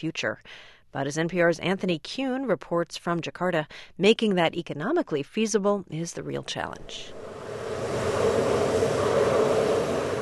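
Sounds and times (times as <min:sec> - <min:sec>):
speech: 0:00.0 - 0:07.8
geothermal steam roaring from a crack in the ground: 0:07.2 - 0:10.2.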